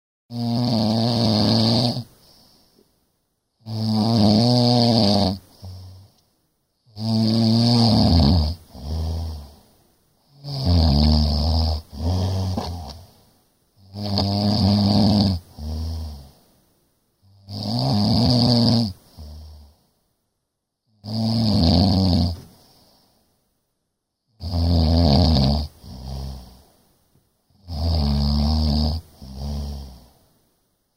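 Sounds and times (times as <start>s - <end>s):
loud snoring: 0.3s - 2.6s, 3.6s - 6.2s, 6.9s - 13.2s, 13.8s - 16.4s, 17.2s - 19.8s, 21.0s - 22.5s, 24.4s - 26.7s, 27.6s - 30.3s.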